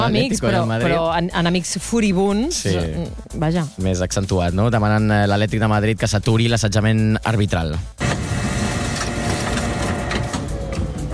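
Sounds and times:
speech: 0.0s - 8.0s
printer printing with mechanical whirring, grinding and clicks: 8.0s - 11.1s.

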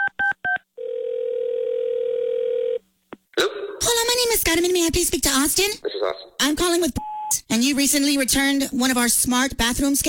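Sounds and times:
loud steady telephone tone: 0.0s - 2.8s
speech: 4.4s - 10.0s.

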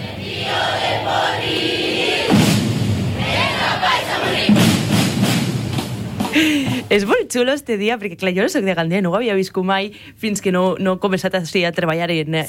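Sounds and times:
continuous roar of a large festival crowd: 0.0s - 5.5s
festival drums pounding during a drum festival in Gandia: 0.0s - 7.2s
speech: 6.9s - 12.4s.

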